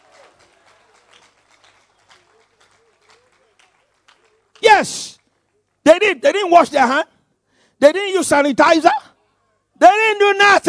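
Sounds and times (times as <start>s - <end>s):
crowd clapping: 0.0s - 5.8s
speech: 4.8s - 5.2s, 6.0s - 7.1s, 7.8s - 9.0s, 9.8s - 10.6s.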